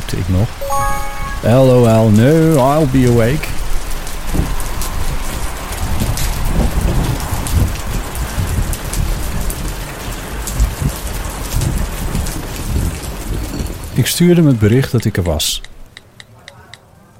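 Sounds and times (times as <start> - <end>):
speech: 0.1 - 3.6, 14.0 - 15.7
heavy rain during a storm: 2.1 - 14.0.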